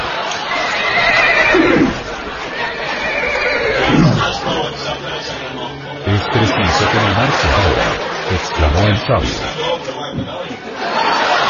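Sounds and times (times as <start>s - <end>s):
laughter: 0.0s - 11.4s
steady noise: 0.0s - 11.4s
horse whinnying: 0.6s - 4.3s
speech: 8.8s - 10.4s.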